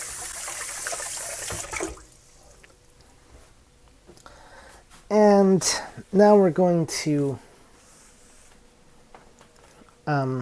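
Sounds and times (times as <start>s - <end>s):
water running from a tap while a hand is washed: 0.0s - 2.8s
speech: 5.4s - 7.5s, 10.1s - 10.4s.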